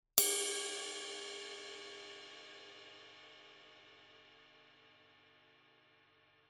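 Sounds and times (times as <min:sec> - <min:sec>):
mellow 22-inch ride cymbal body hit: 0:00.2 - 0:03.6.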